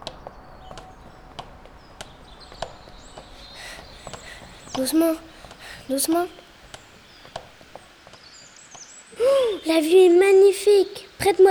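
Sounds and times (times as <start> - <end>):
children's footsteps climbing the stairs of the Eiffel Tower: 0.0 - 8.9
speech: 4.8 - 5.3, 5.9 - 6.4, 9.7 - 11.4.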